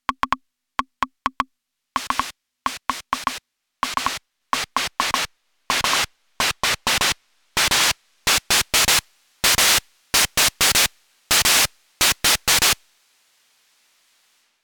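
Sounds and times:
Akai Rhythm Wolf drum machine percussion: 0:00.0 - 0:08.4
noise floor hiss: 0:01.6 - 0:14.6.

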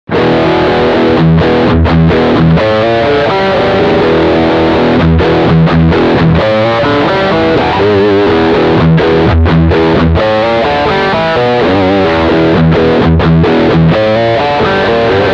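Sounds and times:
electric guitar riff on rear humbucker pickup: 0:00.1 - 0:15.3.

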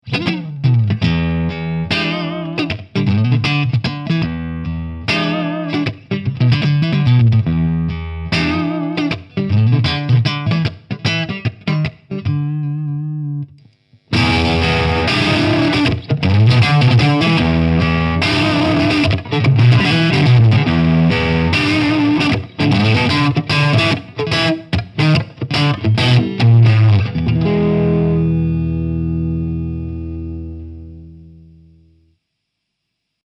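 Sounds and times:
single coil neck pickup guitar: 0:00.0 - 0:32.1.

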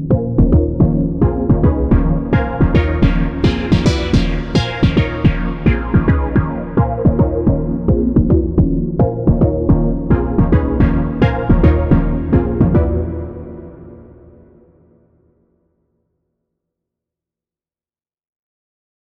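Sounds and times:
cell chord: 0:00.1 - 0:08.0, 0:09.1 - 0:15.0.

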